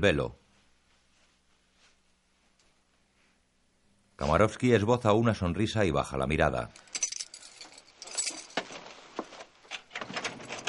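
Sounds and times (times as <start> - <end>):
speech: 0.0 - 0.4, 4.2 - 7.0
bunch of keys jangling: 6.8 - 8.6
door opening: 9.7 - 10.6.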